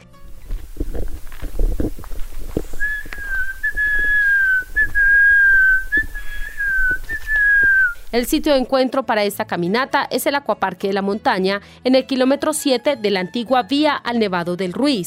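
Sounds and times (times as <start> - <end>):
low rustling and handling noise: 0.2 - 8.7
person whistling imitating a quetzal's call in a nature reserve: 2.7 - 8.6
speech: 8.1 - 15.0.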